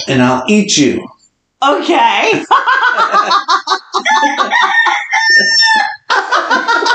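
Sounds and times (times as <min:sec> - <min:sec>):
speech: 0:00.0 - 0:05.9
laughter: 0:02.3 - 0:06.9
rooster crowing: 0:04.0 - 0:06.1.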